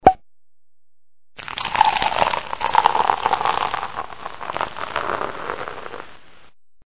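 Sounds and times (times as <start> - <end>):
champagne cork popping: 1.4 - 6.2.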